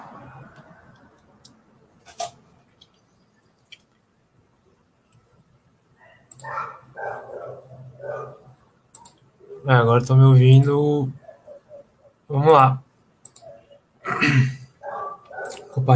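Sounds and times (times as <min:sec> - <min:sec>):
dog barking: 0:06.0 - 0:08.6, 0:11.2 - 0:11.9, 0:14.8 - 0:15.8
speech: 0:09.6 - 0:11.2, 0:12.4 - 0:12.8, 0:14.2 - 0:14.6, 0:15.8 - 0:15.9.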